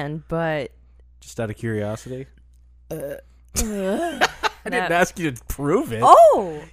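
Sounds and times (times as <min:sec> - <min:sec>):
speech: 0:00.0 - 0:06.7
loud burps made on cue: 0:02.9 - 0:04.2.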